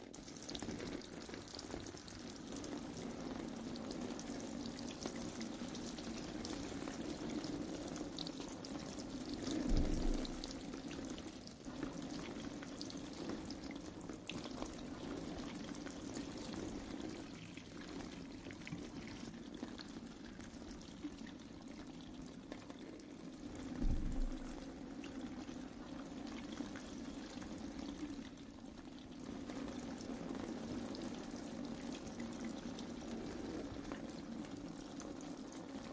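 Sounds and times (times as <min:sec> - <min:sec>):
running water pouring while something is washed off: 0:00.0 - 0:35.9.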